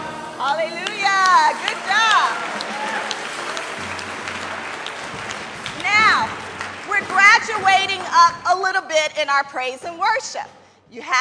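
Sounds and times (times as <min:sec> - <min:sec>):
speech: 0:00.4 - 0:02.6, 0:07.4 - 0:11.1
crowd clapping along: 0:00.7 - 0:08.6.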